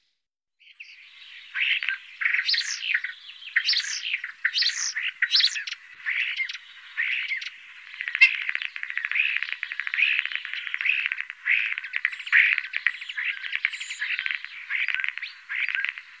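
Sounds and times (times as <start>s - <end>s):
Common starling singing in Germany, Austria, Switzerland: 0.8s - 16.1s.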